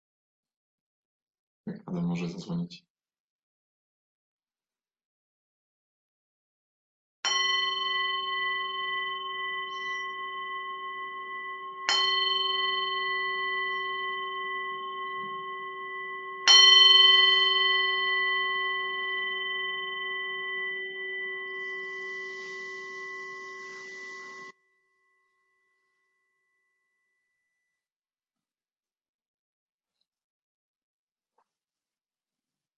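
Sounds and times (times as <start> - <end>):
person speaking: 1.7 - 2.8
meditation bell ringing: 7.3 - 27.7.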